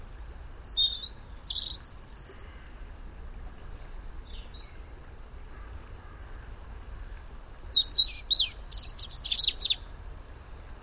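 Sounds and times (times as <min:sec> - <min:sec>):
European robin singing: 0:00.1 - 0:02.6, 0:03.6 - 0:05.7, 0:07.0 - 0:10.8.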